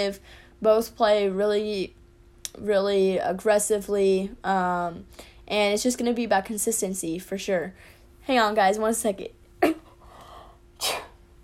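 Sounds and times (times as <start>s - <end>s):
speech: 0.0s - 2.0s, 2.6s - 9.8s
single sharp sneeze: 10.8s - 11.2s.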